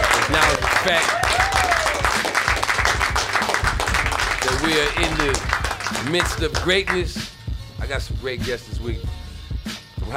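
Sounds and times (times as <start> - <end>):
audience applause at a live show: 0.0 - 7.0
speech: 0.3 - 1.2, 4.5 - 9.2.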